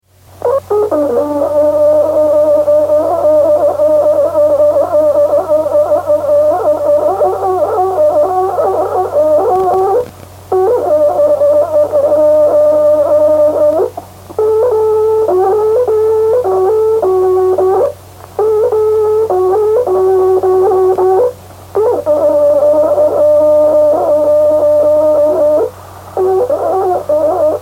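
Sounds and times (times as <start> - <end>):
Mapuche trutruka playing: 0.4 - 27.6.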